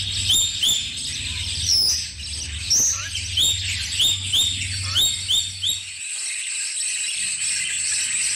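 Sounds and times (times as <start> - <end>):
low hum: 0.0 - 6.0
streaked spiderhunter chirping on a tutor recording: 0.0 - 8.3.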